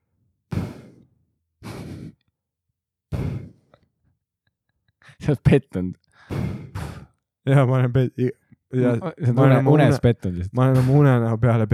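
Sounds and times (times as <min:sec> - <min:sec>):
person imitating their own heavy breathing while asleep: 0:00.5 - 0:02.2, 0:03.1 - 0:03.7, 0:06.2 - 0:07.1
speech: 0:05.3 - 0:06.6, 0:07.4 - 0:11.7.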